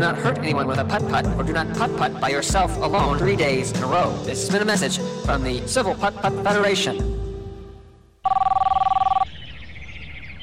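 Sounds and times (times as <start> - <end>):
speech: 0.0 - 7.2
telephone ringing with an incoming caller: 8.2 - 9.2.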